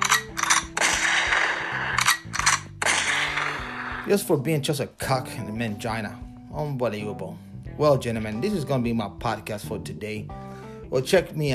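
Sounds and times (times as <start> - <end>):
shotgun blast sound effect: 0.8 - 1.7, 2.6 - 3.8
speech: 4.1 - 11.5.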